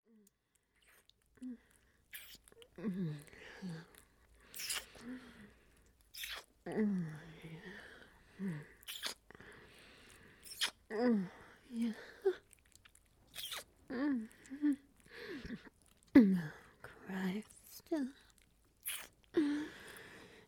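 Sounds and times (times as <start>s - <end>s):
wet ambience noises: 0.5s - 20.0s.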